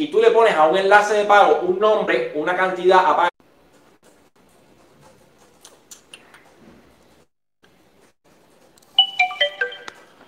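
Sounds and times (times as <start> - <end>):
speech: 0.0 - 3.3
Chinese-made mobile phone ringtone: 9.0 - 10.2.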